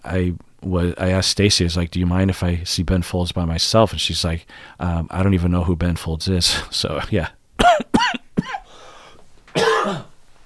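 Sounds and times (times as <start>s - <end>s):
speech: 0.1s - 7.8s
raspy breath in: 4.5s - 4.8s, 8.6s - 9.2s
person coughing: 7.6s - 8.8s, 9.5s - 10.2s.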